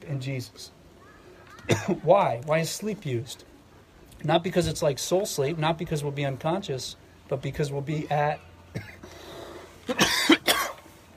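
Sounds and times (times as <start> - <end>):
speech: 0.1 - 0.8, 1.7 - 3.5, 4.2 - 8.9
person coughing from a tickle in the throat: 1.7 - 2.0, 9.9 - 10.8.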